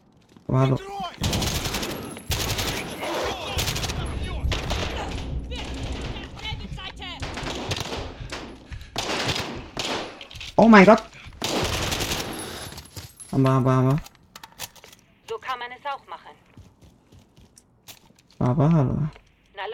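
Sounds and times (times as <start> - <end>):
speech: 0.5 - 1.5, 10.6 - 11.2, 13.4 - 14.1, 18.4 - 19.2
video game machine gun fire: 1.2 - 10.3, 11.4 - 12.4.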